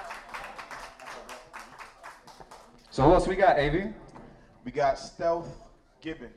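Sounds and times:
crowd applauding: 0.0s - 3.3s
speech: 3.0s - 4.0s, 4.6s - 6.3s.

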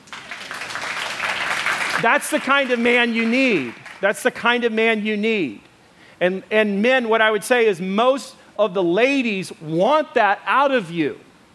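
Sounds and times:
audience clapping: 0.0s - 4.3s
speech: 2.0s - 11.3s.

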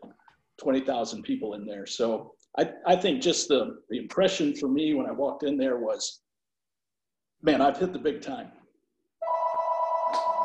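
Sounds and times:
speech: 0.6s - 6.2s, 7.4s - 8.6s
landline telephone ringing: 9.2s - 10.4s.

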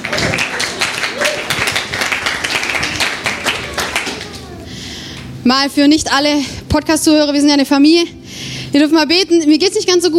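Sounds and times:
crowd applauding: 0.0s - 4.6s
speech: 5.5s - 10.1s.

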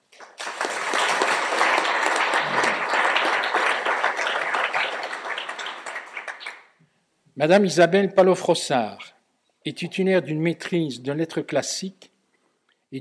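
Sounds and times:
crowd applauding: 0.0s - 6.7s
speech: 7.4s - 12.1s.

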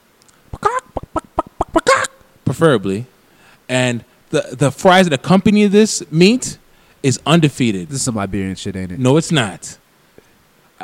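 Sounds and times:
person imitating chicken clucking: 0.5s - 2.3s
speech: 2.5s - 3.1s, 3.7s - 9.8s.

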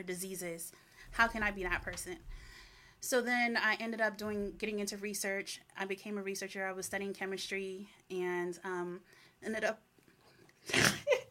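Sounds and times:
speech: 0.0s - 9.9s, 10.6s - 11.2s
sneeze: 10.7s - 11.2s.

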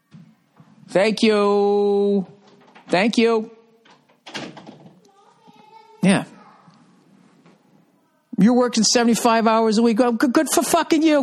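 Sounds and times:
speech: 0.9s - 3.6s, 6.0s - 6.3s, 8.5s - 11.2s
door shutting with a firm thud: 4.0s - 5.0s.

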